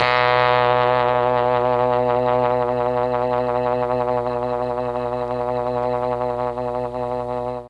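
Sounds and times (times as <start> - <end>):
trombone: 0.0 - 7.5.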